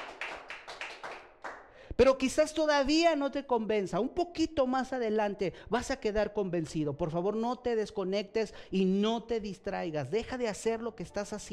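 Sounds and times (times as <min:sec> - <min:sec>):
audience hands clapping: 0:00.0 - 0:01.8
speech: 0:02.0 - 0:11.5.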